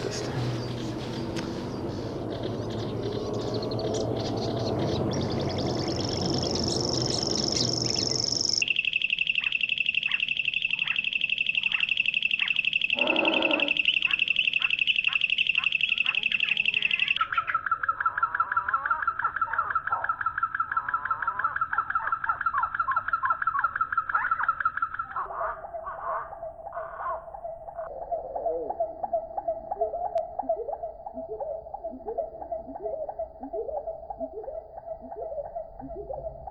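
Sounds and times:
grasshopper warbler's high insect-like reel: 0.0s - 17.2s
faint outdoor noise: 0.0s - 36.4s
nightingale singing: 0.0s - 36.4s.

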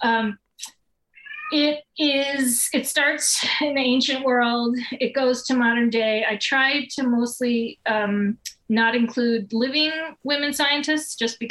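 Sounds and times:
speech: 0.0s - 0.8s, 1.5s - 11.4s
cat chirping and meowing: 1.2s - 1.8s.

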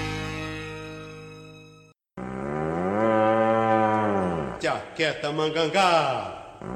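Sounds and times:
cattle mooing: 2.2s - 4.6s
speech: 5.0s - 6.7s.

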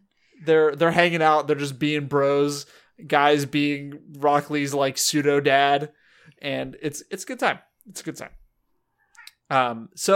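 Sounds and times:
speech: 0.4s - 8.4s, 9.5s - 10.1s
cat meowing loudly: 9.1s - 9.4s.

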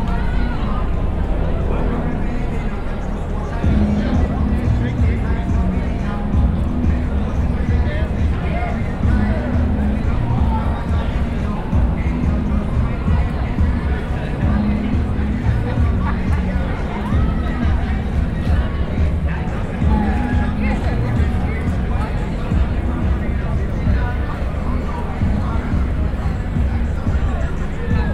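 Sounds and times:
heavy steady low rumble: 0.0s - 28.1s
overlapping voices talking at an outdoor city protest site in Seattle: 0.0s - 28.1s.

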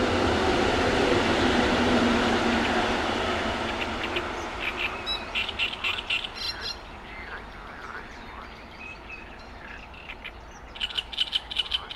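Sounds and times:
train rumbling past a pond: 0.0s - 11.9s
quick chirpy bird calls: 3.7s - 11.9s.

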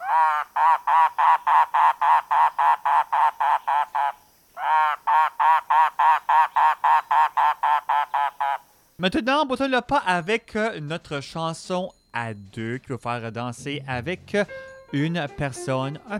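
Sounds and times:
mangrove cuckoo calling: 0.0s - 9.0s
speech: 9.0s - 16.1s.

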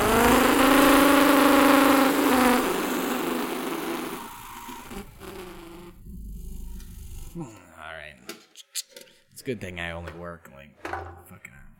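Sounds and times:
car engine running as the car is driven down the road: 0.0s - 7.3s
speech: 9.5s - 11.6s.

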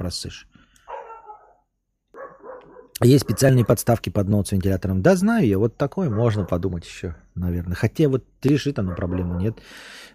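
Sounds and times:
speech: 0.1s - 0.5s, 3.0s - 10.1s
dogs barking: 0.8s - 4.0s, 5.9s - 6.9s, 8.6s - 9.6s.

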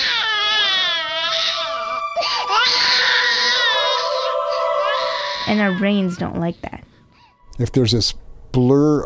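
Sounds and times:
infant crying in high-pitched wails: 0.0s - 6.6s
speech: 5.5s - 6.8s, 7.6s - 9.0s.

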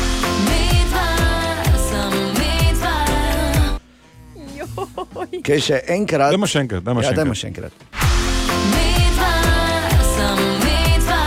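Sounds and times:
person singing over sparse backing: 0.0s - 3.8s, 8.5s - 11.2s
pop song with thumping beat and full instrumentation: 0.0s - 3.8s, 7.9s - 11.2s
speech: 5.3s - 8.0s.

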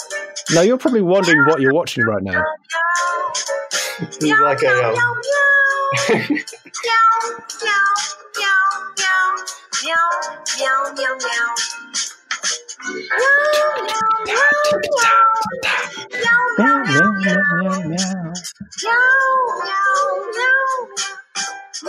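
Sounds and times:
speech: 0.5s - 5.3s, 5.9s - 12.1s, 12.8s - 21.1s
laughter: 5.9s - 6.7s, 13.4s - 17.2s
cat meowing and yowling: 13.2s - 16.9s.

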